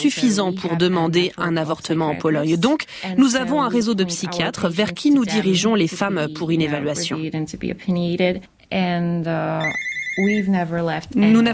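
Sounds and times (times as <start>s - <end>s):
speech: 0.0s - 11.5s
electronic telephone ringing: 9.6s - 10.6s.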